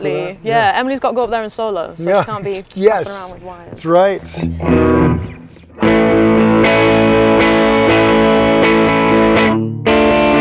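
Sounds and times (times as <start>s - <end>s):
speech: 0.3s - 5.2s, 5.8s - 6.8s
distorted electric guitar through an amplifier: 4.2s - 10.4s.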